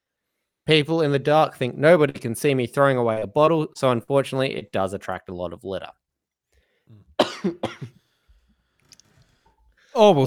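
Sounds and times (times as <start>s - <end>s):
speech: 0.7s - 6.0s, 6.9s - 8.0s, 10.0s - 10.2s
throat clearing: 6.9s - 8.0s
man coughing: 7.2s - 8.0s.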